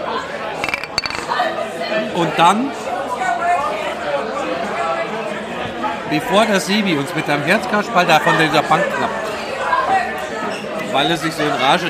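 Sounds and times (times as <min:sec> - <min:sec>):
soft chatter: 0:00.0 - 0:11.8
beer glasses clinking in a toast: 0:00.6 - 0:01.5
speech: 0:02.0 - 0:02.8, 0:06.1 - 0:09.3, 0:10.9 - 0:11.8.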